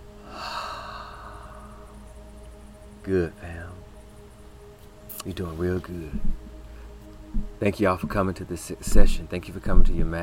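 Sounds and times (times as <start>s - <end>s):
deep intentional inhale and exhale during a guided prayer breathing session: 0.2s - 2.0s
speech: 3.1s - 3.8s, 5.2s - 6.4s, 7.3s - 10.2s.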